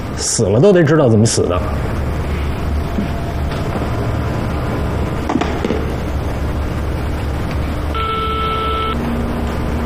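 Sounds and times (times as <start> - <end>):
noisy hiss and rumble: 0.0 - 9.8
speech: 0.2 - 2.0
telephone dial tone beep as a call is dialed: 8.0 - 9.0.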